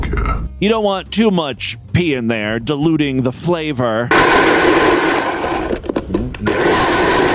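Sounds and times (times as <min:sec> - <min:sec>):
speech: 0:00.4 - 0:05.1
compact personal blender running: 0:04.1 - 0:05.8, 0:06.5 - 0:07.3.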